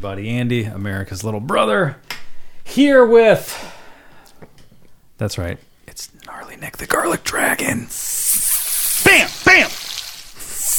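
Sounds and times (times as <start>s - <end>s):
speech: 0.0s - 3.8s, 5.2s - 8.2s, 9.0s - 9.9s
steady sizzling hiss: 7.9s - 10.7s.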